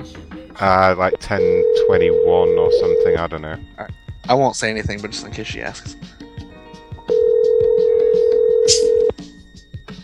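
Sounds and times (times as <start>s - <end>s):
speech: 0.0s - 6.2s
hotel room telephone ringing with electronic tone: 1.2s - 3.3s, 7.1s - 9.1s.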